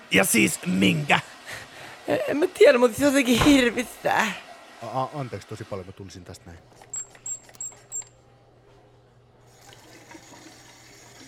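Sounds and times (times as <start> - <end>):
speech: 0.1 - 1.3, 2.1 - 7.0
squeaky chirps: 6.9 - 8.1.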